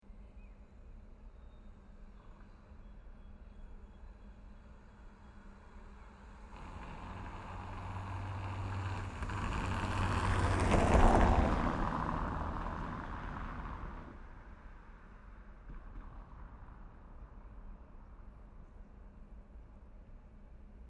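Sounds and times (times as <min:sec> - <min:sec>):
city car passing on a cobblestone road in Paris France: 0:05.8 - 0:17.6.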